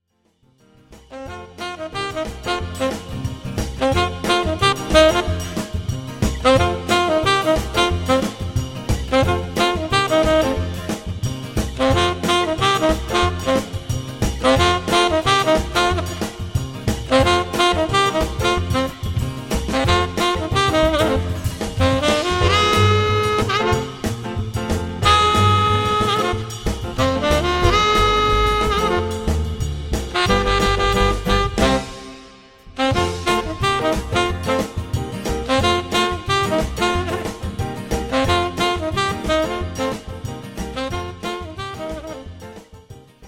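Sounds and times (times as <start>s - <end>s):
solo saxophone: 1.1s - 42.8s.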